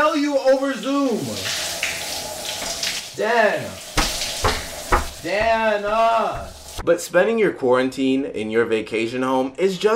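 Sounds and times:
shower running behind bathroom door: 0.0 - 6.8
speech: 0.6 - 1.6, 3.2 - 3.9, 5.2 - 9.9
soft knocks: 4.0 - 6.8.

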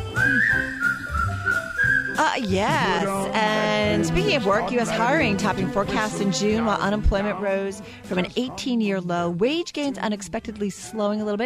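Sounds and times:
person whistling a bright melody: 0.0 - 3.2
speech: 0.3 - 0.8, 2.2 - 11.4.

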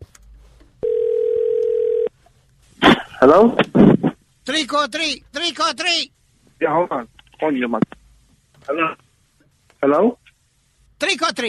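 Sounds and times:
telephone dial tone: 0.8 - 2.1
speech: 3.2 - 3.9, 4.5 - 8.0, 8.7 - 9.0, 9.8 - 10.2, 11.0 - 11.4.

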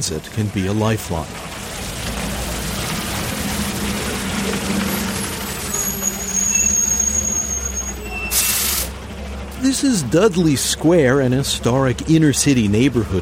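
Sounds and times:
speech: 0.0 - 1.5, 9.6 - 13.2
idling bus engines at a large outdoor bus depot: 0.1 - 13.2
bus brake squeal at an outdoor bus depot: 4.0 - 9.0
bus air brakes hissing at an outdoor bus depot: 6.0 - 9.0.

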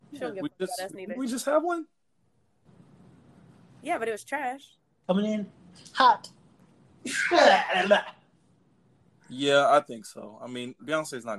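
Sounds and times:
speech: 0.2 - 2.0, 3.8 - 6.4, 7.0 - 8.2, 9.3 - 11.3
drawn-out voiced sneeze: 7.1 - 8.1.

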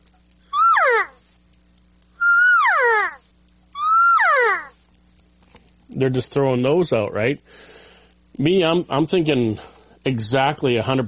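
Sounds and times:
faint low hum: 0.0 - 11.0
elk bugling: 0.5 - 1.2, 2.2 - 3.2, 3.8 - 4.8
speech: 6.0 - 7.8, 8.4 - 11.0.

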